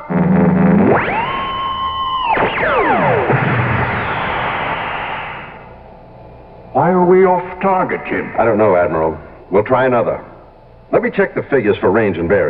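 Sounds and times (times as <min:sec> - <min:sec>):
electronic weapon-firing effect in a radio drama: 0:00.1 - 0:05.7
speech: 0:06.8 - 0:10.3, 0:10.9 - 0:12.4.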